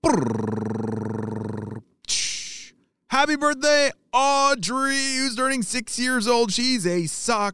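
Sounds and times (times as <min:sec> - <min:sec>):
voice imitating a drum roll: 0:00.0 - 0:01.8
speech: 0:03.2 - 0:07.5.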